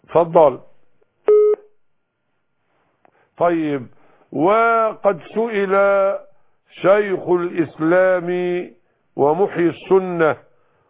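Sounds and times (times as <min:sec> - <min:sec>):
speech: 0:00.1 - 0:00.7, 0:03.4 - 0:10.5
telephone line tone as a call is connected: 0:01.3 - 0:01.6.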